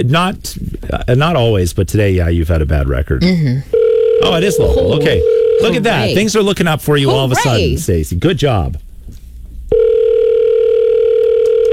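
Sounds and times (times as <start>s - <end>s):
speech: 0.0s - 8.8s
electronic ringback tone through a phone line on an outgoing call: 3.7s - 6.2s, 9.7s - 11.7s.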